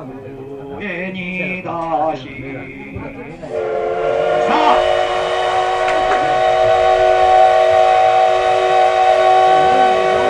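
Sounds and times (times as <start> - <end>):
speech: 0.8 - 5.0
steam locomotive whistle at the start of a train trip: 3.4 - 10.2.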